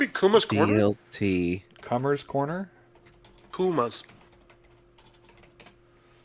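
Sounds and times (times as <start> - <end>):
speech: 0.0 - 2.8, 3.6 - 4.2
soft key clicks of typing a search on a computer keyboard: 2.9 - 5.8.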